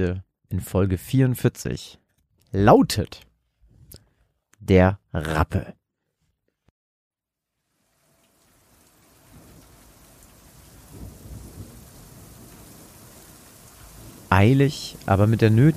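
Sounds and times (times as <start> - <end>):
speech: 0.0 - 3.3, 4.6 - 5.8, 14.3 - 15.7
heavy rain in a dense steady downpour: 7.7 - 15.7
deep thunder rumbling: 8.6 - 15.7.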